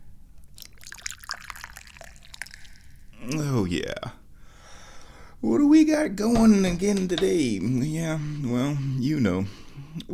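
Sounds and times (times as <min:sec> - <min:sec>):
tea pouring into a cup: 0:00.5 - 0:03.2
speech: 0:03.2 - 0:04.2, 0:05.4 - 0:10.1.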